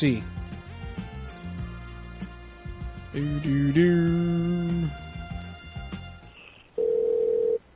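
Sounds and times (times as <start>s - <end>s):
speech: 0.0s - 0.3s, 3.1s - 5.0s
short electronic phone dialing tones: 6.8s - 7.6s.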